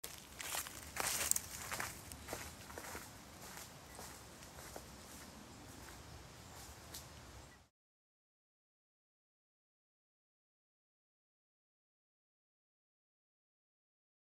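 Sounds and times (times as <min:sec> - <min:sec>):
footsteps walking away: 0:00.0 - 0:07.1.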